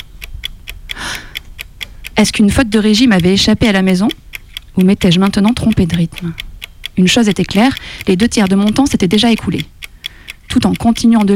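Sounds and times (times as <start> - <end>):
clock ticking: 0.0 - 11.3
soft breathy rush: 0.9 - 2.2, 9.9 - 10.5
speech: 2.2 - 4.2, 4.8 - 6.4, 7.0 - 9.7, 10.5 - 11.3.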